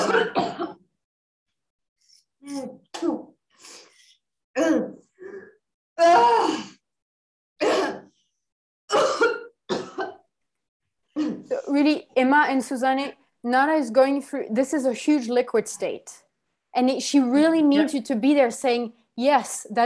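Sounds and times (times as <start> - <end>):
coughing and throat-clearing during a group breathwork session: 0.0 - 0.9, 2.7 - 3.4, 4.5 - 6.8, 7.6 - 8.2, 8.9 - 10.3, 11.2 - 11.7
speech: 2.4 - 3.8, 4.6 - 4.9, 12.2 - 16.2, 16.8 - 19.8.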